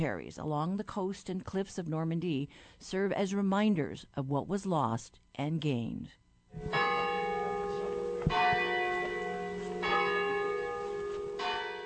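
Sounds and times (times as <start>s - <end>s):
speech: 0.0s - 6.9s
church tower bells pealing in a little town: 6.6s - 11.8s.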